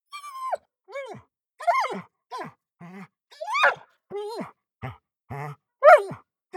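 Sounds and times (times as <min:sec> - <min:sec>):
dog whining heavily: 0:00.2 - 0:02.4, 0:03.4 - 0:04.5, 0:05.8 - 0:06.1.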